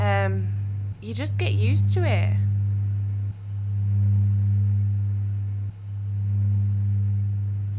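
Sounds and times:
running machines humming: 0.0s - 7.7s
speech: 1.0s - 2.5s.

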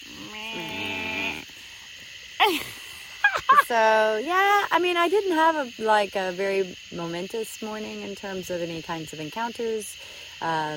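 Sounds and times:
frog giving a long tonal buzzing croak: 0.0s - 1.6s
speech: 2.4s - 2.8s, 3.7s - 10.7s.

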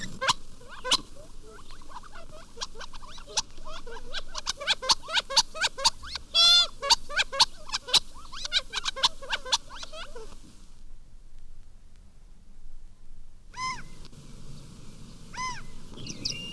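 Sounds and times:
Gambel's quail calling: 0.0s - 10.4s, 13.5s - 14.0s, 15.3s - 16.5s.

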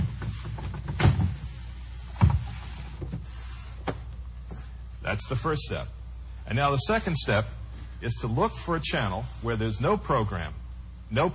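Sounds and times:
television set thumping as it is turned around: 0.0s - 4.1s
speech: 5.1s - 11.3s.

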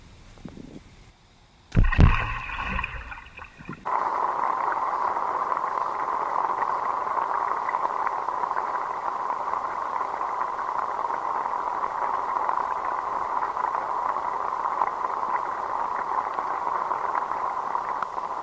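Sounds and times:
heavy object plunging into water: 1.7s - 3.9s
water churning and gurgling: 1.8s - 18.4s.

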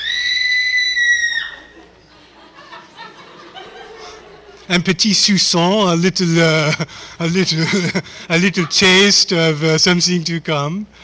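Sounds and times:
crowd screaming together high-pitched: 0.0s - 2.0s
people laughing: 1.5s - 4.8s, 6.2s - 9.3s
speech: 4.7s - 11.0s.

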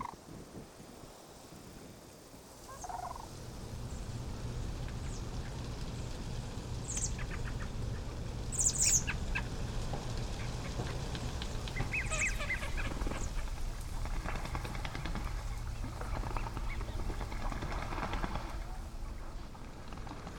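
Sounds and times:
low rumble of wind outdoors: 0.0s - 20.3s
sandhill cranes calling: 2.6s - 3.3s, 6.8s - 20.0s.

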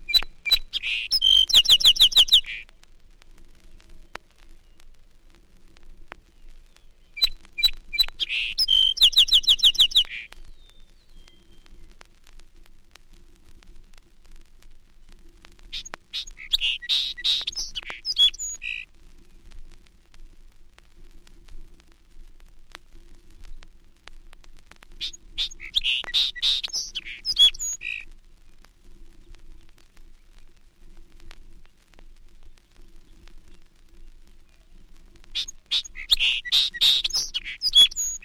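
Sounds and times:
song sparrow singing: 0.0s - 2.6s, 6.7s - 11.7s, 15.8s - 18.8s, 25.0s - 28.0s, 35.4s - 38.2s.

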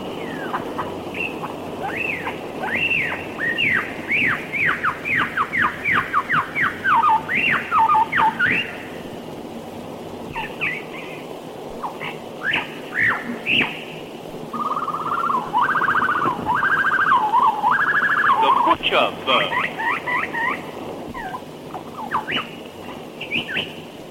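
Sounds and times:
lyrebird calling in an Australian forest: 0.0s - 9.0s, 10.3s - 24.0s
steady hiss of Australian forest background: 0.0s - 24.0s.

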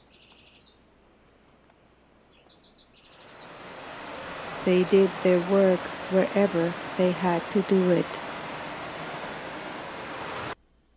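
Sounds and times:
waterfall falling into a cave: 3.2s - 10.6s
speech: 4.6s - 8.2s.

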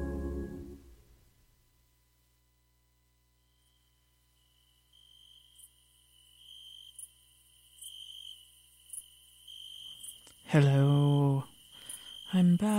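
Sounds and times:
crickets chirping in the woods: 3.4s - 12.7s
speech: 10.5s - 11.5s, 12.3s - 12.7s.

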